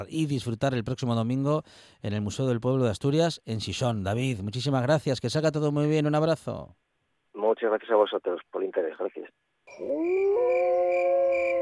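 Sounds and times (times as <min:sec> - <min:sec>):
speech: 0:00.0 - 0:06.8, 0:07.5 - 0:11.6
wolf howling: 0:09.7 - 0:11.6.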